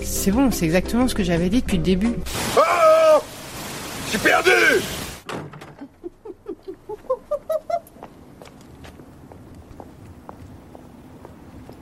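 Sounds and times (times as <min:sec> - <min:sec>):
speech: 0:00.0 - 0:03.3, 0:04.1 - 0:05.6
footsteps with a faint ringing tone: 0:07.8 - 0:11.8.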